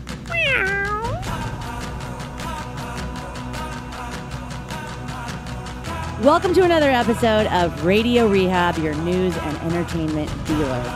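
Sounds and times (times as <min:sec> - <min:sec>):
cat meowing: 0:00.3 - 0:01.4
speech: 0:06.2 - 0:10.9.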